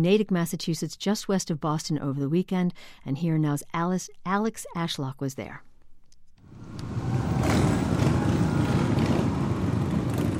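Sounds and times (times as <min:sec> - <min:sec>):
speech: 0:00.0 - 0:05.7
dozens of motorcycle engines rumbling together as riders roll into downtown Natick, Massachusetts: 0:06.5 - 0:10.3.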